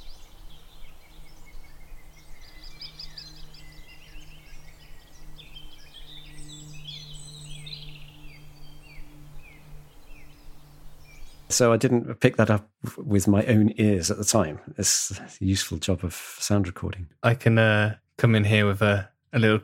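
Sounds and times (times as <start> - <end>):
lesser spotted woodpecker calling in spring: 0.0 - 11.5
speech: 11.5 - 19.6.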